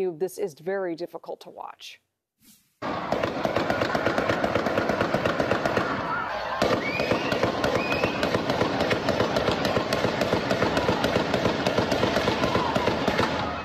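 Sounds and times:
speech: 0.0 - 4.0
high-powered rifle gunfire from a building roof: 2.8 - 13.6.

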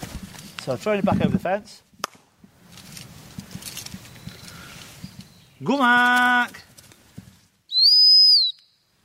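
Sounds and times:
speech: 0.7 - 1.9, 5.6 - 6.6
dog training stop whistle blast: 7.7 - 8.8.

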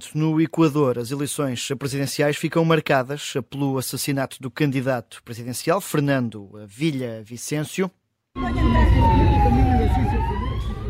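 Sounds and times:
speech: 0.0 - 10.3
dense street noise during street unrest in Ecuador: 8.4 - 10.8
emergency siren wailing during street unrest in Ecuador: 8.4 - 10.8
low traffic rumble: 8.4 - 10.8.

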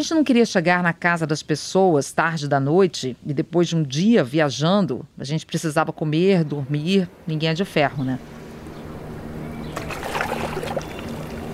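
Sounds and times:
speech: 0.0 - 8.4
steady low boat engine hum: 5.8 - 11.5
water splashing and sloshing around a moving boat: 8.2 - 11.5.

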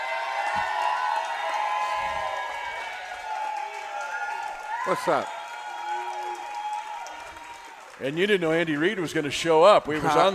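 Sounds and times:
stadium fans whooping: 0.0 - 8.0
huge stadium crowd of football fans cheering: 0.0 - 10.3
stadium fans clapping: 0.0 - 10.3
speech: 4.9 - 5.4, 8.0 - 10.3.

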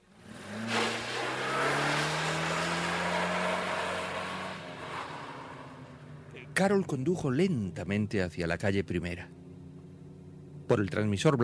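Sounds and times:
car engine starting and revving as the vehicle pulls away: 0.0 - 6.5
speech: 6.6 - 9.4, 10.7 - 11.4.

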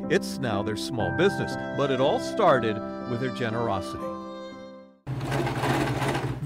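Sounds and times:
speech: 0.1 - 4.1
sewing machine stitching cloth masks: 5.1 - 6.4.

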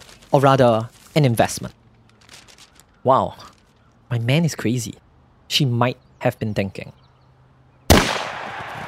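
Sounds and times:
speech: 0.3 - 1.8, 3.0 - 3.5, 4.1 - 7.0
gunshot starting a horse race: 7.9 - 8.8.

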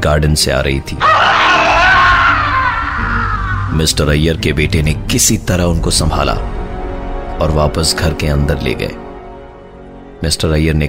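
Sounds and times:
speech: 0.0 - 1.7, 3.7 - 6.6, 7.4 - 9.0, 10.2 - 10.8
man screaming: 1.0 - 3.8.

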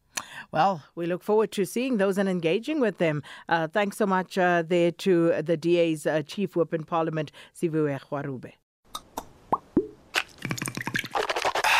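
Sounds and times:
speech: 0.5 - 8.6
Listerine mouthwash being poured: 10.2 - 11.7.

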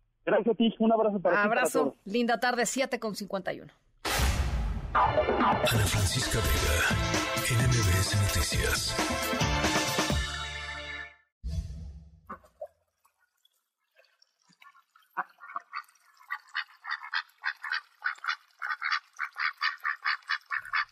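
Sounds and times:
speech: 0.3 - 3.8, 5.0 - 9.8
short loud burst: 4.0 - 5.5
duck quacking: 15.2 - 20.9.

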